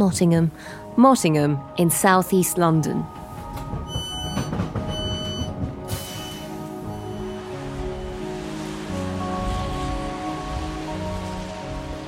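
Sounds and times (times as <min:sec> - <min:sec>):
speech: 0:00.0 - 0:03.2
rain falling on hard surfaces outdoors on a road: 0:03.2 - 0:12.0
high ringing tone: 0:03.9 - 0:07.6.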